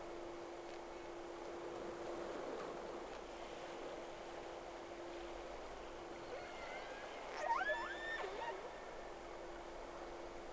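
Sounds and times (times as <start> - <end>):
constant low hum: 0.0 - 10.5
whale whistle: 6.2 - 8.8.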